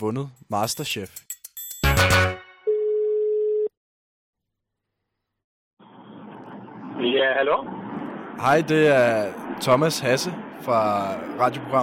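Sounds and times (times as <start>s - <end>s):
speech: 0.0s - 1.3s, 7.0s - 7.8s, 8.4s - 11.8s
telephone ringing tone while placing a call: 2.6s - 3.7s.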